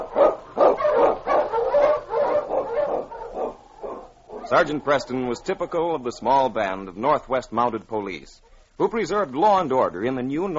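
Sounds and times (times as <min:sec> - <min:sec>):
husky sled dog barking: 0:00.0 - 0:04.7
speech: 0:04.5 - 0:10.5.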